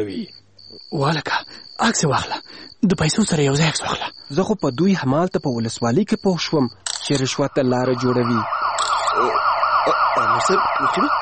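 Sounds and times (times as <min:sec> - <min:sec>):
speech: 0:00.0 - 0:08.6, 0:09.2 - 0:11.1
police car siren: 0:07.2 - 0:11.1.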